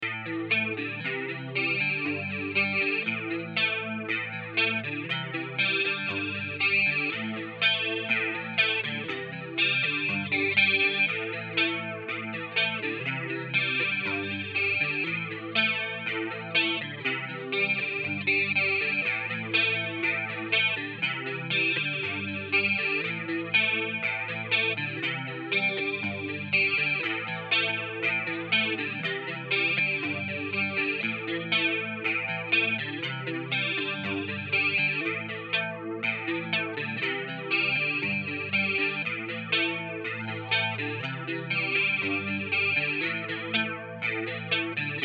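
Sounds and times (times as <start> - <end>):
guitar chords A minor C G with chorus effect: 0.0 - 45.0.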